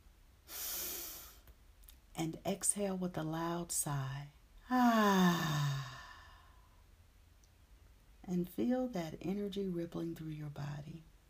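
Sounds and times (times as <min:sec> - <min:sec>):
speech: 0:02.2 - 0:05.9, 0:08.3 - 0:11.1
deep breath in: 0:05.2 - 0:06.7.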